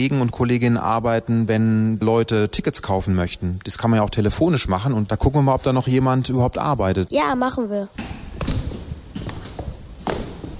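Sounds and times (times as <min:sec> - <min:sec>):
speech: 0:00.0 - 0:08.2
footsteps on a hard floor of a telephone ticket-sales centre: 0:08.0 - 0:10.5.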